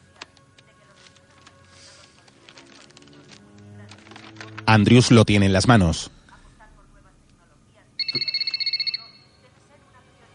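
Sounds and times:
speech: 4.7 - 6.2
mobile phone ringing with a trilling burst: 8.0 - 9.5.

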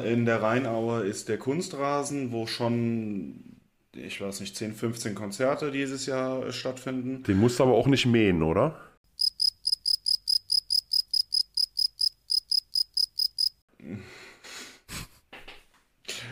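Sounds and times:
speech: 0.0 - 8.9
cricket chirping: 9.1 - 13.6.

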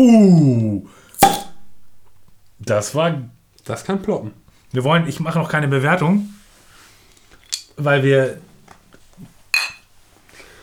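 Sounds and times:
speech: 0.0 - 1.0, 2.6 - 6.4, 7.8 - 8.4
beer glasses clinking in a toast: 1.2 - 1.6.

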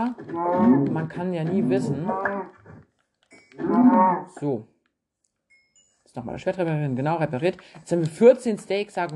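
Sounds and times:
cow mooing: 0.0 - 2.6, 3.6 - 4.4
speech: 0.0 - 2.6, 3.8 - 4.7, 6.1 - 9.1.

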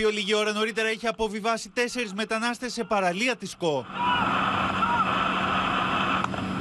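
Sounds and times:
speech: 0.0 - 4.6
port authority patrol boat engines roaring at sea: 3.6 - 6.5.

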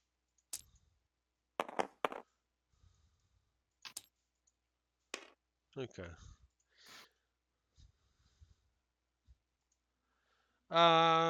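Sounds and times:
dice rolled during a tabletop role-playing game: 1.6 - 2.3, 3.9 - 4.1, 5.2 - 5.4
speech: 5.8 - 6.4, 10.7 - 11.2.

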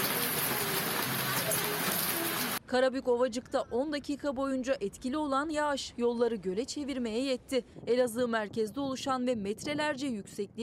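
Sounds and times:
marble-sized hail pelting a surface: 0.0 - 2.6
speech: 2.7 - 10.6.

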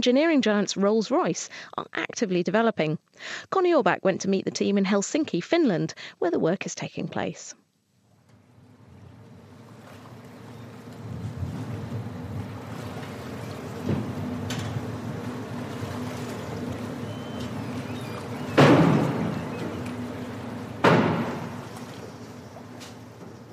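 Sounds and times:
speech: 0.0 - 7.6
ferry engine drone pulling into harbour in Helsinki: 8.3 - 23.5
two sharp loud thuds of hull against dock: 13.6 - 15.0, 16.3 - 21.8.

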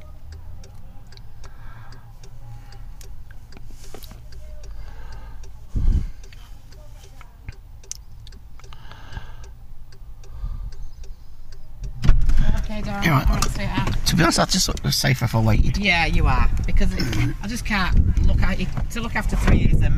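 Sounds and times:
car turn indicator clicking inside the cabin: 0.0 - 19.7
low rumble of idling car engine: 0.0 - 19.9
brief louder thump: 12.0 - 12.5
speech: 12.9 - 19.9.

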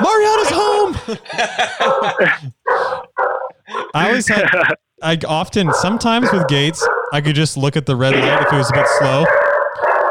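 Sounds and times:
laughter: 0.1 - 3.0, 3.7 - 4.8
speech: 1.1 - 2.6, 3.9 - 9.5
dog barking: 1.8 - 4.1, 5.6 - 7.2, 8.1 - 10.1.

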